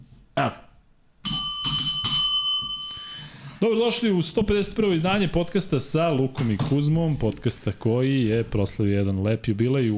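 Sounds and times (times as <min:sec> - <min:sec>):
speech: 0:00.4 - 0:00.6, 0:03.6 - 0:09.9
small hand bell being struck: 0:01.2 - 0:03.3.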